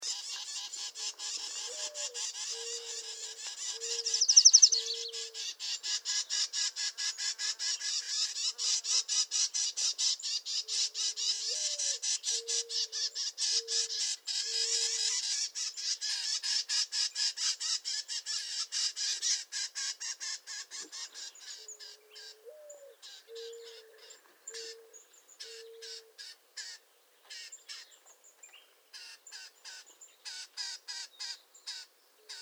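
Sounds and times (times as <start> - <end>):
Bell's Vireo Vireo bellii: 0.0 - 32.4.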